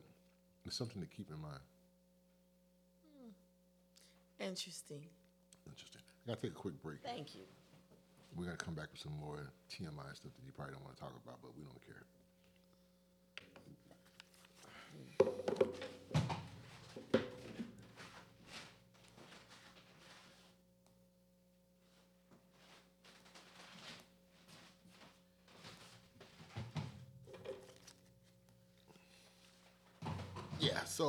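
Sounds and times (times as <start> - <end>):
steady low hum: 0.0 - 31.0
speech: 0.7 - 1.8, 4.4 - 7.6, 8.3 - 12.2
chair scraping across a hard floor: 15.7 - 20.5, 22.6 - 28.0.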